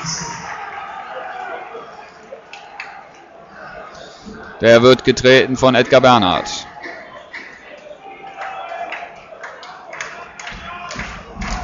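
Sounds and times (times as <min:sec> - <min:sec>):
stadium crowd cheering and urging on their team: 0:00.0 - 0:11.6
speech: 0:04.6 - 0:06.7
rhythmic claps and thumps: 0:08.9 - 0:11.6.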